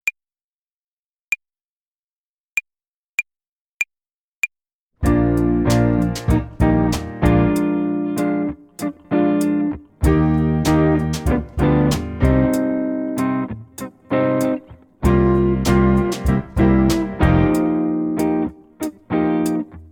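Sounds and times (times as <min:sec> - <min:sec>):
hi-hat play along for tempo and rhythm practice: 0:05.0 - 0:19.6.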